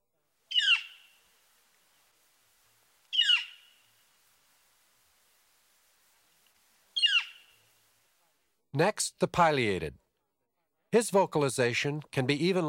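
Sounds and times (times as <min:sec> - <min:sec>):
northern flicker loud call note: 0:00.5 - 0:01.3, 0:03.1 - 0:04.0, 0:07.0 - 0:07.7
speech: 0:08.8 - 0:10.0, 0:10.9 - 0:12.6.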